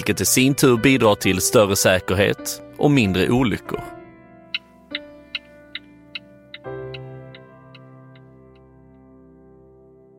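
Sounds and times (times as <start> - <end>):
speech: 0.0 - 4.0
car turn signal ticking: 4.6 - 8.7.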